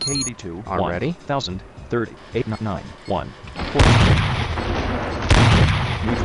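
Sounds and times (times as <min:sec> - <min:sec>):
speech: 0:00.1 - 0:04.4, 0:06.0 - 0:06.2
heavy tank gun blasts in a video game: 0:03.7 - 0:06.2.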